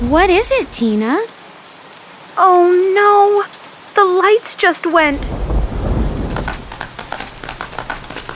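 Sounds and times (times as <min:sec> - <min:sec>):
deep rumble of thunder: 0:00.0 - 0:01.2, 0:05.0 - 0:07.5
steady rapid patter of rain tapping on a surface: 0:00.0 - 0:08.3
speech: 0:00.1 - 0:01.4, 0:02.4 - 0:05.4.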